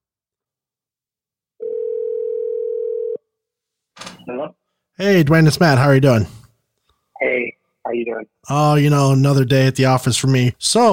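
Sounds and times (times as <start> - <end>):
telephone dial tone while placing a call: 1.6 - 3.2
speech: 4.3 - 6.4, 7.2 - 10.9.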